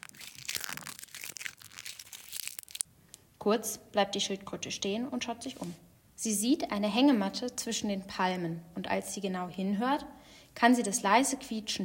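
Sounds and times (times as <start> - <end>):
seashells breaking underfoot on a beach: 0.0 - 2.8
speech: 3.4 - 11.8.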